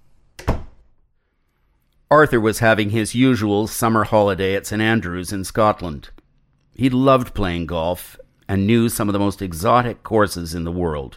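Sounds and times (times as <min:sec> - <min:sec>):
door shutting with a click and thunk: 0:00.4 - 0:00.8
speech: 0:02.1 - 0:06.2, 0:06.8 - 0:11.1.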